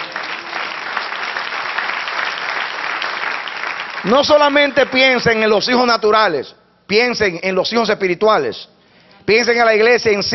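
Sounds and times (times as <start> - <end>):
congregation applauding: 0.0 - 5.6
speech: 4.0 - 10.3.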